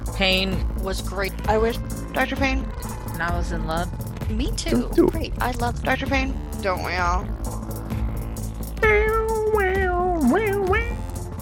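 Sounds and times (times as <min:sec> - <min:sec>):
speech: 0:00.2 - 0:07.6
cat meowing: 0:08.8 - 0:11.0.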